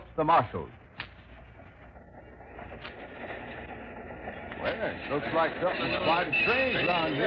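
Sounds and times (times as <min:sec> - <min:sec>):
train coming to a stop rumbling and rattling: 0:00.0 - 0:07.2
speech: 0:00.2 - 0:00.8, 0:04.6 - 0:07.2
faint higher squealing of train: 0:03.0 - 0:07.2.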